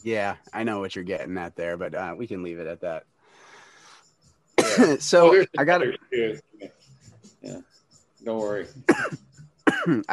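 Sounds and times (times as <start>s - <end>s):
speech: 0.0s - 3.5s, 4.7s - 6.8s, 7.4s - 10.1s
throat-clearing rasp: 4.6s - 5.0s, 8.9s - 10.1s
person coughing roughly: 4.6s - 6.0s, 8.9s - 10.1s.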